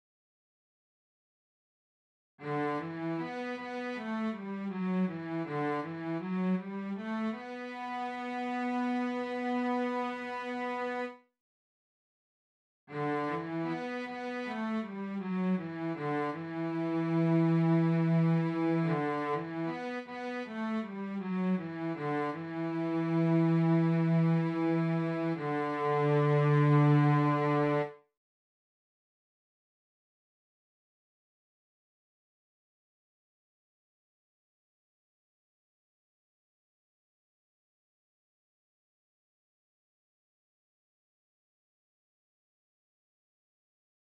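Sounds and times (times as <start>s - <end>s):
cellos through Marshall JVM: 2.4s - 11.3s, 12.9s - 28.0s.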